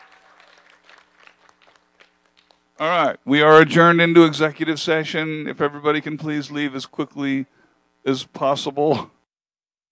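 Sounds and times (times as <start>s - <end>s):
room full of people applauding: 0.0s - 2.6s
speech: 2.8s - 9.2s.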